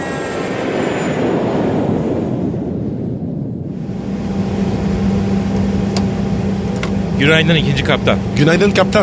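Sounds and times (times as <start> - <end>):
faint high whine of airplane engine: 0.0 - 9.0
low humming tone: 2.4 - 9.0
airplane engine idling on the ground: 3.6 - 9.0
speech: 7.2 - 9.0.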